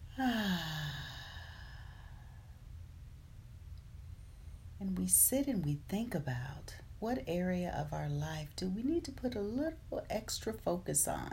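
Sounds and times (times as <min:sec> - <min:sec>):
deep breath released as a soft voiced sigh: 0:00.0 - 0:02.6
speech: 0:00.2 - 0:00.8, 0:04.8 - 0:11.3.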